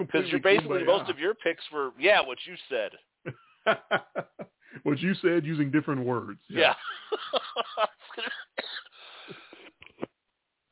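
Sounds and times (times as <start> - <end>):
laughter: 0.0 - 1.3, 3.3 - 4.6, 6.6 - 8.5
speech: 0.0 - 8.3
person coughing harshly: 7.2 - 9.5
raspy wheezing breath in: 8.9 - 9.8.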